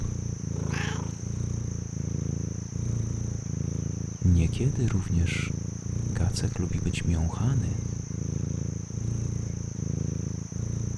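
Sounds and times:
black-and-white cat purring: 0.0 - 10.9
speech: 4.3 - 5.6, 6.3 - 8.0.

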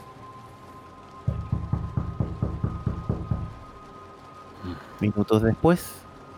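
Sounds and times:
faint steady hum: 0.0 - 6.3
knocking on a wooden door: 1.3 - 3.7
speech: 5.0 - 6.0.

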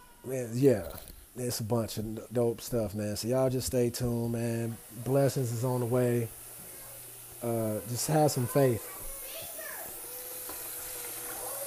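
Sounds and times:
speech: 0.2 - 6.4, 7.4 - 9.0
water running from a tap while preparing a dishwasher: 2.9 - 11.6.

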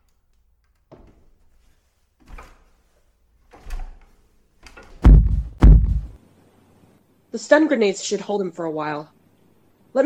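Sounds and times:
door opening: 3.5 - 6.2
heavy wooden thuds of a door: 5.0 - 6.2
speech: 7.4 - 9.2.

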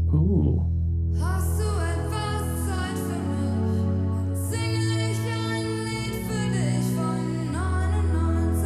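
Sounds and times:
speech: 0.1 - 1.8
1980s German pop song with synth and bass: 1.1 - 8.6
sung female-style vocal line drenched in reverb: 1.1 - 8.6.

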